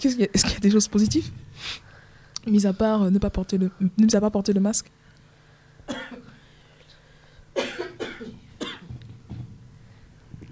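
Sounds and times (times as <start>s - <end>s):
speech: 0.0s - 5.0s, 5.9s - 6.2s
person coughing from the heat in the control room: 5.9s - 6.5s, 7.6s - 9.0s.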